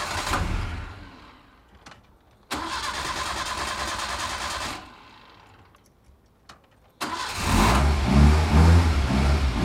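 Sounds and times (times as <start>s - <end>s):
old Zastava car engine cranking, sputtering and idling roughly: 0.0s - 1.4s, 2.5s - 5.5s, 7.0s - 9.1s.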